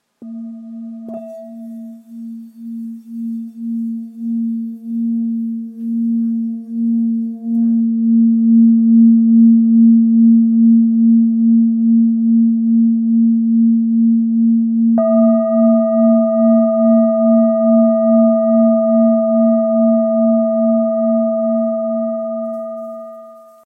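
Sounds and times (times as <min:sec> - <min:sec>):
singing bowl tuned to A sharp: 0:00.2 - 0:23.6.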